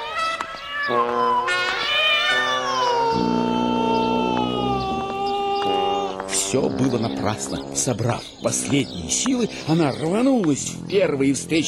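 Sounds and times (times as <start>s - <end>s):
cat on a chain leash yowling loudly: 0.0s - 6.2s
speech: 0.9s - 1.4s, 6.5s - 11.6s.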